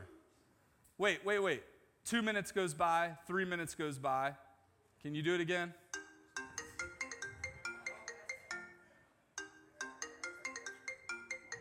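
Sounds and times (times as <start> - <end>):
speech: 1.0 - 4.4, 5.0 - 5.8
phone ringtone playing a bright repeating melodic phrase: 5.9 - 11.6.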